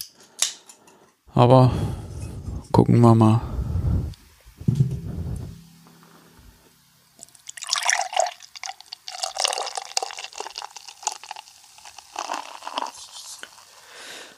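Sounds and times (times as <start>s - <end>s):
speech: 1.4s - 2.0s, 2.8s - 4.0s
low thumps and clinks: 4.6s - 6.9s
beer made with cryo hops pouring into a glass: 7.2s - 14.3s.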